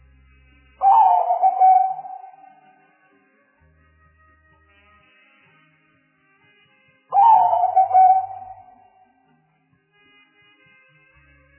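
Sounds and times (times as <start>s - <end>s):
spotted dove cooing: 0.8s - 2.6s, 7.2s - 8.8s.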